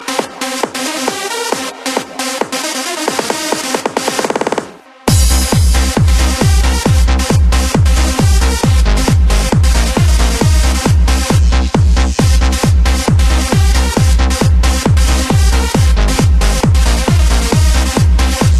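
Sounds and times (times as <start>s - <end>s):
electronic music: 0.0s - 18.5s.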